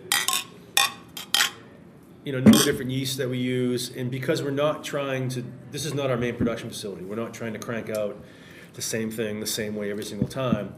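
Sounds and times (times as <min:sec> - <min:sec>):
beer glasses clinking in a toast at a small brewery: 0:00.0 - 0:01.6, 0:02.5 - 0:02.8
speech: 0:02.2 - 0:10.7.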